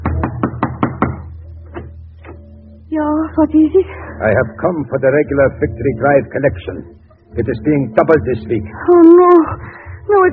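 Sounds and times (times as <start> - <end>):
firm knocks on a front door: 0.0 - 1.9
low hum: 0.0 - 10.3
speech: 2.9 - 10.3.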